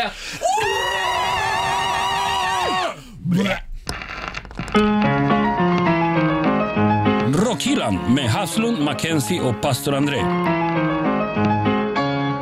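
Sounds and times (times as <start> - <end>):
speech: 0.0 - 0.9, 3.3 - 3.7, 4.8 - 5.1, 7.7 - 10.9
group of people screaming together: 0.4 - 3.0
upbeat music: 4.8 - 12.4.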